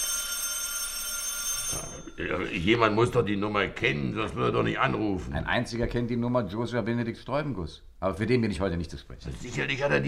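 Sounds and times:
telephone bell ringing: 0:00.0 - 0:03.2
speech: 0:01.7 - 0:10.0.

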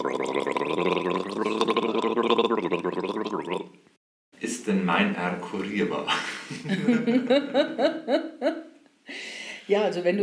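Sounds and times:
person gargling water: 0:00.0 - 0:03.8
speech: 0:00.1 - 0:00.9, 0:04.7 - 0:08.6, 0:09.7 - 0:10.2.

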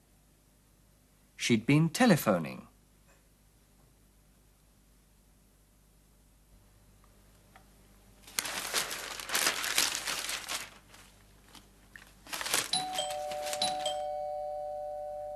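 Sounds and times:
speech: 0:01.5 - 0:02.7
paper crinkling and rustling: 0:08.2 - 0:14.1
doorbell chime ringing: 0:12.8 - 0:15.3.

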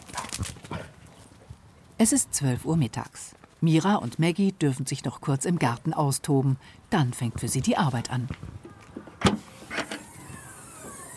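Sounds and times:
speech: 0:02.0 - 0:08.6
thump of a car door or hatch: 0:09.2 - 0:10.0
whirring motor-like rise: 0:09.6 - 0:11.1.

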